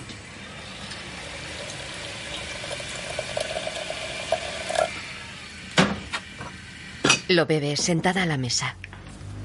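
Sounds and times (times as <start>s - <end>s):
boiling water from a kettle poured into a teapot over tea leaves: 0.5s - 5.0s
speech: 7.3s - 8.9s.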